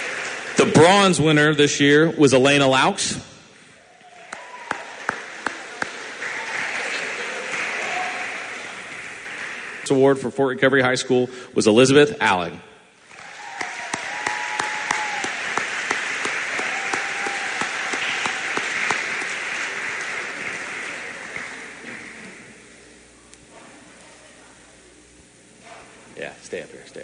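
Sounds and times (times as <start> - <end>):
large audience clapping at a high school awards ceremony: 0.0 - 2.0, 3.8 - 10.3, 13.0 - 22.7
speech: 0.6 - 3.3, 9.9 - 12.7.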